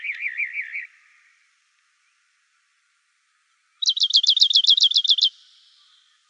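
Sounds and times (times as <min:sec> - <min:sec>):
Rock wren song in Arizona: 0:00.0 - 0:01.4, 0:03.8 - 0:06.2.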